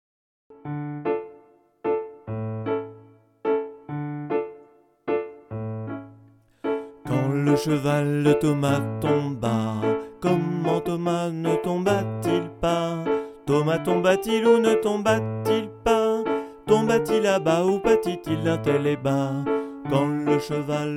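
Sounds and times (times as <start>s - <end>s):
piano accompaniment to a canon: 0.5s - 20.9s
person singing: 6.9s - 20.9s.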